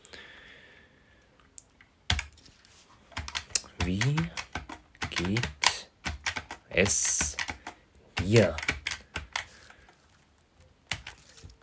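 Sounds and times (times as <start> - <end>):
typing on a computer keyboard in a notepad program: 2.1 - 2.4, 3.1 - 9.8, 10.9 - 11.3
speech: 3.9 - 4.2, 6.8 - 7.2, 8.3 - 8.6.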